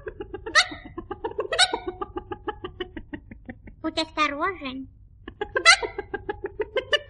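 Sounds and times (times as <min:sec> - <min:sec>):
hen clucking: 0:00.0 - 0:03.4, 0:05.3 - 0:06.3
laughter: 0:00.0 - 0:03.9, 0:05.3 - 0:07.0
hen squawking: 0:00.5 - 0:02.0, 0:05.6 - 0:06.0
speech: 0:03.8 - 0:05.0.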